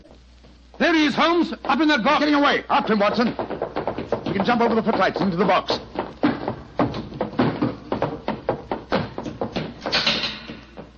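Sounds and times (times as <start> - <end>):
speech: 0.8 - 3.5, 4.4 - 5.8
theater exit door rattled and banged: 2.8 - 10.9.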